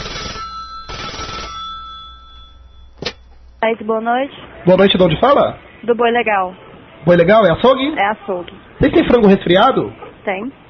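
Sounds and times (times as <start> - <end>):
telephone ringing on an outgoing call to a butcher shop: 0.0 - 3.6
speech: 3.6 - 10.6.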